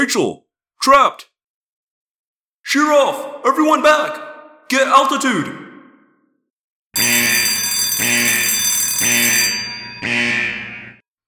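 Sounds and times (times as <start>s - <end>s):
speech: 0.0s - 1.3s, 2.6s - 5.6s
loud harsh electronic alarm ringing: 7.0s - 11.0s.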